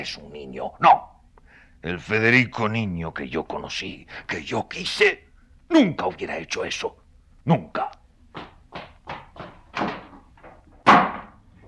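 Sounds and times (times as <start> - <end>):
speech: 0.0 - 1.1, 1.8 - 8.5
quick heavy footfalls on floor: 8.4 - 10.8
door slamming shut: 9.7 - 10.2, 10.8 - 11.4.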